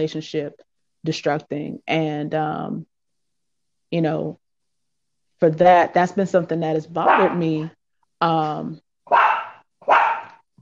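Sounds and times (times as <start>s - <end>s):
speech: 0.0s - 2.9s, 3.9s - 4.4s, 5.4s - 9.2s
female puppy barking: 7.0s - 7.4s, 9.1s - 10.4s.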